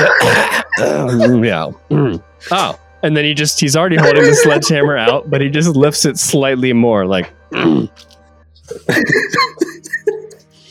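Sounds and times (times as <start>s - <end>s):
laughter: 0.0s - 1.7s, 3.9s - 5.6s, 8.7s - 10.5s
voice imitating a cat coughing up a hairball: 0.0s - 2.2s, 8.9s - 9.8s
speech: 0.2s - 8.1s, 8.7s - 10.2s.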